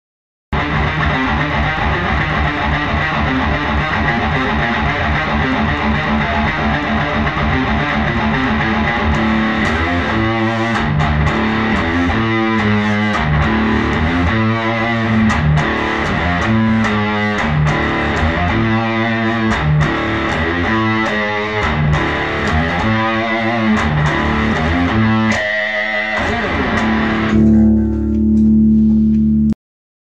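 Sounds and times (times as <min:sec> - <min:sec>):
DigiTech DDM effects pedals through mixer output: 0:00.6 - 0:29.6.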